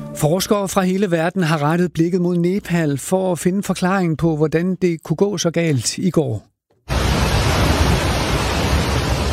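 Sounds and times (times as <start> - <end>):
speech: 0.2 - 6.5
rushing brown floodwater roaring: 6.9 - 9.3.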